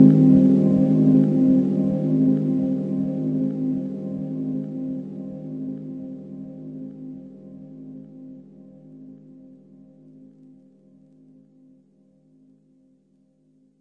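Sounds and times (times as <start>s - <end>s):
muted seventh chord pads: 0.0s - 8.2s.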